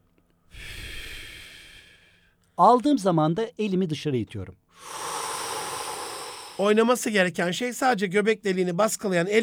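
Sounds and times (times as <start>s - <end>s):
person exhaling air out through the mouth: 0.5s - 2.2s, 4.8s - 6.6s
speech: 2.6s - 5.0s, 6.6s - 9.4s.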